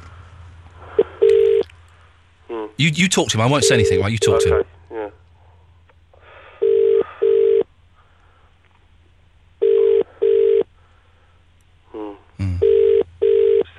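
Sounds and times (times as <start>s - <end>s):
telephone ringback tone on an outgoing call: 1.0s - 1.6s, 3.5s - 4.6s, 6.6s - 7.7s, 9.6s - 10.7s, 12.6s - 13.7s
speech: 2.7s - 5.2s.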